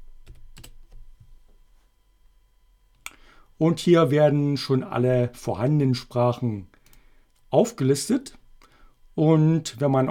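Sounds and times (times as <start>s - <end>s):
keystrokes on a computer keyboard typing a password: 0.2s - 1.0s
speech: 3.6s - 6.8s, 7.5s - 8.4s, 9.2s - 10.0s.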